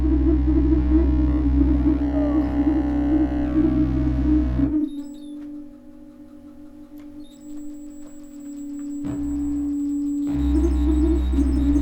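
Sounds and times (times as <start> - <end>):
buzzing electronic drone from light sensors and a sine generator: 0.0 - 11.7.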